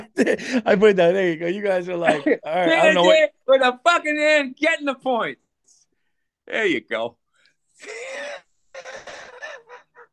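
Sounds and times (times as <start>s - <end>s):
speech: 0.2s - 5.4s, 6.5s - 7.2s, 7.8s - 9.0s
raspy wheezing cough: 7.8s - 10.1s.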